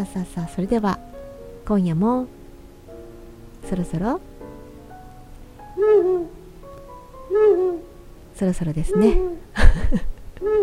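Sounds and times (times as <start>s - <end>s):
speech: 0.0s - 2.4s, 3.7s - 4.3s, 8.4s - 10.5s
quiet hum: 0.0s - 10.6s
owl hooting: 5.7s - 6.4s, 7.3s - 7.9s.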